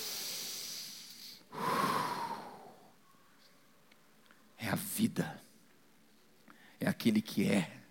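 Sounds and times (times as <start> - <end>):
slow deliberate breath close to the microphone: 0.0 - 3.0
speech: 5.0 - 5.4, 6.8 - 7.8.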